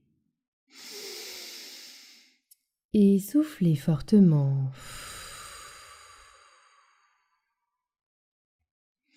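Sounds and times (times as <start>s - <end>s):
deep breath in: 0.7s - 2.4s, 4.8s - 7.5s
speech: 3.0s - 5.1s.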